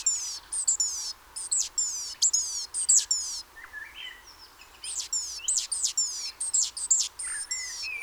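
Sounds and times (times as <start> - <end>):
great tit Parus major giving piercing high notes and ticks: 0.0 - 3.4, 4.8 - 7.9
lower chirps: 0.0 - 3.4, 4.9 - 7.8.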